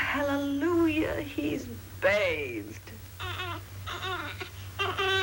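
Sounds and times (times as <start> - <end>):
speech: 0.1 - 2.9
baby with colic crying in wailing bursts: 3.2 - 5.2.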